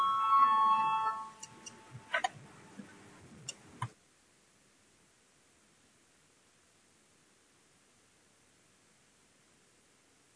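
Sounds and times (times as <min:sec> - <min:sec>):
parliament voting bell with steady electronic tone: 0:00.0 - 0:01.4.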